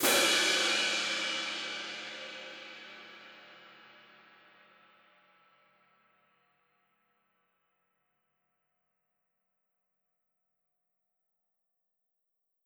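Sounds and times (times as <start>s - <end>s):
looped win cymbal: 0.0s - 6.2s.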